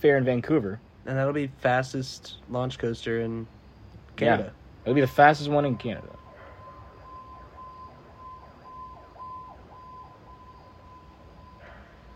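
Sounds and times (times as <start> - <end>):
speech: 0.0 - 3.6, 4.2 - 6.2
siren from a nearby firehouse wailing: 4.8 - 12.1.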